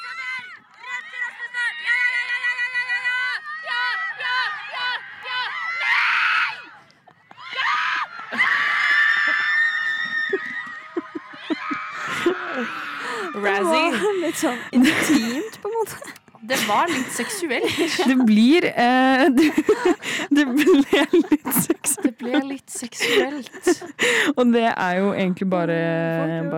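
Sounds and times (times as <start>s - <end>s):
players shouting and yelling celebrating a scored goal: 0.0s - 18.2s
laughter: 8.0s - 12.8s, 13.7s - 24.1s
speech: 13.4s - 26.5s.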